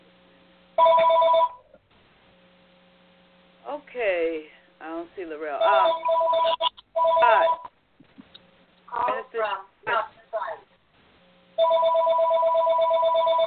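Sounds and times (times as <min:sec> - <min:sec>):
phone ringing in electronic bursts: 0:00.8 - 0:01.6, 0:05.6 - 0:07.7, 0:11.6 - 0:13.4
speech: 0:03.8 - 0:07.6.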